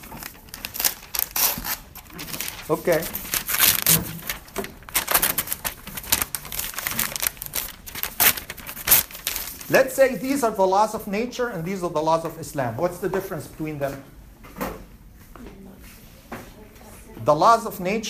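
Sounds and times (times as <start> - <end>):
sheet of paper rustling and crinkling: 0.0 - 9.9
speech: 2.7 - 3.2, 3.9 - 4.2, 9.7 - 14.2, 17.3 - 18.0.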